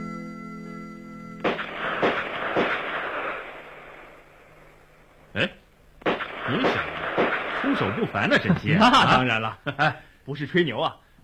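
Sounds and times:
steady tonal hum: 0:00.0 - 0:09.0
gunshots at a police shooting range during live-fire practice: 0:01.4 - 0:04.8, 0:06.0 - 0:09.2
speech: 0:05.4 - 0:05.6, 0:08.1 - 0:11.0
laughter: 0:07.6 - 0:10.0.

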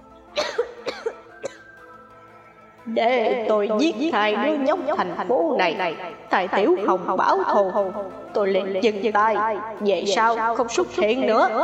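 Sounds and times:
violent dry coughing fit: 0:00.4 - 0:01.8
speech: 0:02.9 - 0:11.6.

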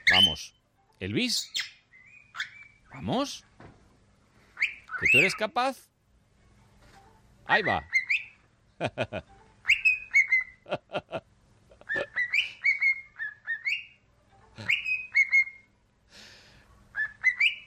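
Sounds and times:
speech: 0:00.2 - 0:01.7, 0:02.4 - 0:03.8, 0:05.0 - 0:05.9, 0:07.5 - 0:08.0, 0:08.8 - 0:09.3, 0:10.7 - 0:11.3
parrot calls: 0:01.4 - 0:03.3, 0:04.6 - 0:05.5, 0:07.5 - 0:08.4, 0:09.6 - 0:10.6, 0:11.8 - 0:14.0, 0:14.6 - 0:15.7, 0:16.9 - 0:17.6
parrot whistling a football club anthem: 0:04.6 - 0:05.4, 0:09.6 - 0:10.6, 0:12.2 - 0:14.0, 0:14.7 - 0:15.7, 0:17.0 - 0:17.6.

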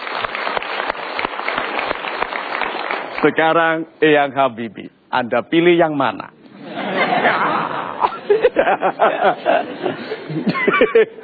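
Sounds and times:
audience applause at a motivational talk event: 0:00.0 - 0:03.3
speech: 0:03.2 - 0:06.4, 0:08.5 - 0:11.2
laughter: 0:06.5 - 0:11.2.

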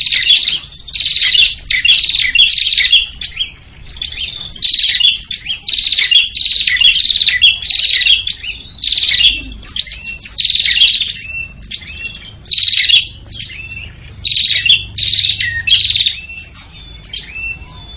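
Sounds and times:
noisy prinia chirping calls: 0:00.0 - 0:17.9.

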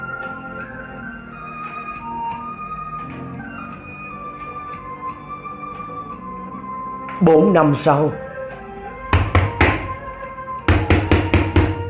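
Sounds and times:
speech: 0:07.2 - 0:08.3
loud heavy knocking on a door: 0:09.1 - 0:10.0, 0:10.7 - 0:11.8.

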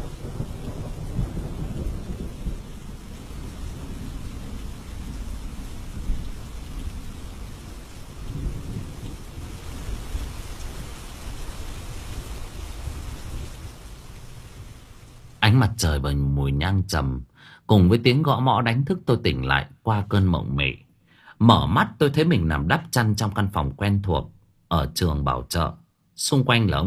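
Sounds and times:
wind: 0:00.0 - 0:15.6
heavy rain pouring down: 0:00.0 - 0:24.2
speech: 0:15.5 - 0:20.8, 0:21.4 - 0:26.8.

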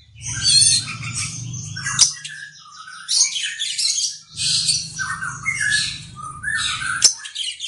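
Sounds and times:
low droning hum: 0:00.0 - 0:02.0, 0:04.3 - 0:07.0
oriental magpie-robin scratchy buzzy notes and short whistles: 0:00.0 - 0:07.6.

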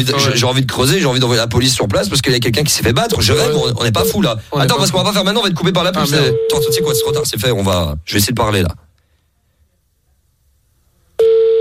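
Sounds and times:
speech: 0:00.0 - 0:08.9
steady mid-pitched telephone tone on unanswered call: 0:03.3 - 0:04.3, 0:06.2 - 0:07.2.

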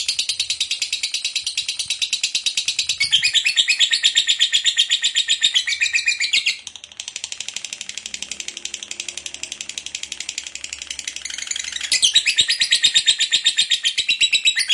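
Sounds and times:
lovebird chattering in rapid rasping high pulses: 0:00.0 - 0:06.7, 0:10.0 - 0:14.7.

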